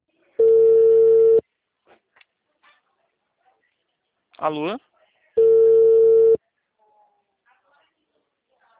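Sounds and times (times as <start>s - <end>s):
telephone tone after a dropped call: 0.4s - 1.4s, 5.4s - 6.4s
speech: 4.4s - 4.9s.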